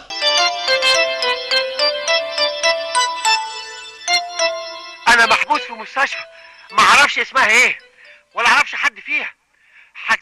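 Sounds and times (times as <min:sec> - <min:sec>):
telephone ringing with an electronic tone: 0:00.0 - 0:08.7
speech: 0:05.8 - 0:07.8, 0:08.4 - 0:09.4, 0:10.0 - 0:10.2.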